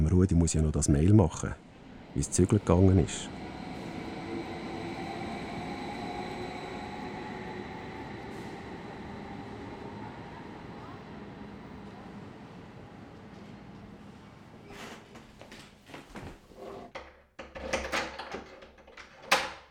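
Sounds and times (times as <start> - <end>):
speech: 0.1 - 3.4
S-Bahn commuter train rumble heard from inside the carriage: 0.6 - 14.6.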